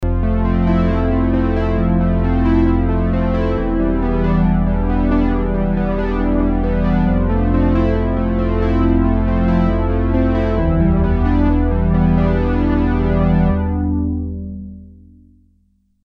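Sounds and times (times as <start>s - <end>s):
Juno106 synthesizer: 0.0s - 15.7s.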